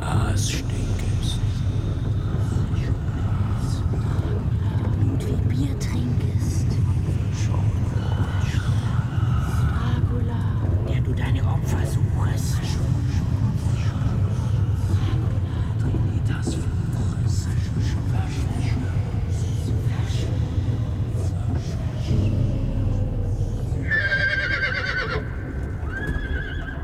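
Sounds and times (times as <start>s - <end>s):
hooves clopping: 0.0s - 26.8s
steady low rumble: 0.0s - 26.8s
two black horses neighing beside an ancient cathedral: 23.8s - 26.8s.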